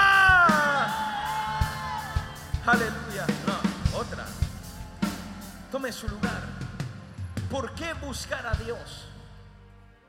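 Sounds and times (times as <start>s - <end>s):
audience member yelling a long war cry: 0.0s - 1.0s
faint crowd: 0.0s - 8.6s
speech: 5.9s - 6.4s, 7.5s - 9.1s.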